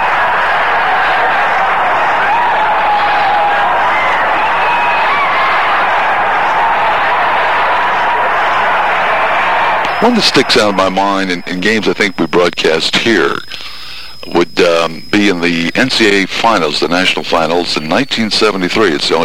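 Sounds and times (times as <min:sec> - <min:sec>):
packed basketball arena crowd roaring and cheering: 0:00.0 - 0:12.2
speech: 0:10.0 - 0:19.2.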